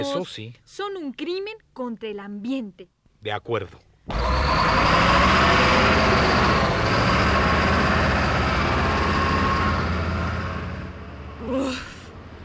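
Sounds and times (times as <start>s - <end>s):
speech: 0.0s - 5.9s
heavy city delfín truck roaring past: 4.1s - 12.4s.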